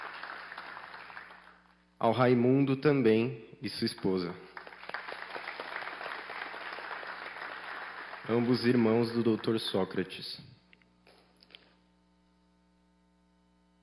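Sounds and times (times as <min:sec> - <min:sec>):
sustained applause from a sizable crowd: 0:00.0 - 0:01.6, 0:04.6 - 0:09.8
man speaking into a microphone: 0:02.0 - 0:04.4, 0:08.2 - 0:10.6
speech: 0:02.0 - 0:04.5, 0:08.3 - 0:10.5.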